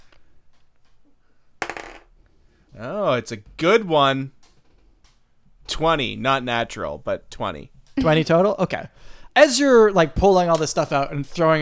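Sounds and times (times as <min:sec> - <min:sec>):
twenty-sided die rolling on a hard tabletop: 0:01.6 - 0:02.1
speech: 0:02.8 - 0:04.4, 0:05.8 - 0:11.6.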